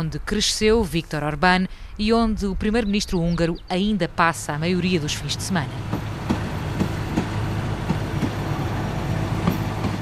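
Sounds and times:
speech: 0.0 - 6.1
low continuous rumble of a small restored train: 0.0 - 9.9
small restored train wheels clicking on rails: 5.7 - 9.9.

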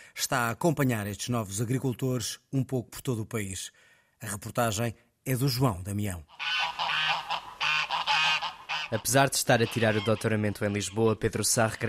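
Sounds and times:
speech: 0.2 - 6.6, 8.9 - 11.8
ducks and chickens at a family house in Esmoriz honking and quacking: 6.3 - 11.8.

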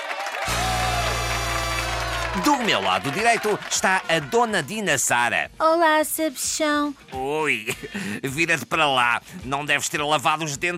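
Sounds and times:
crowd applause: 0.0 - 5.1
speech: 2.4 - 10.7.

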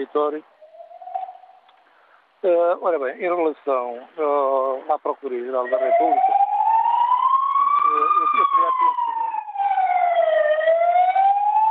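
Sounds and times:
speech: 0.0 - 0.6, 2.4 - 6.4
emergency vehicle siren wailing: 5.6 - 11.6.

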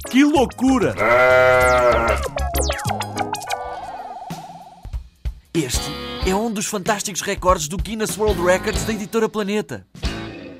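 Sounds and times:
speech: 0.1 - 3.1, 5.6 - 10.0
sheep bleating: 0.9 - 2.4
sustained warbling tone: 1.2 - 4.9
whistling swoops: 3.2 - 5.0.

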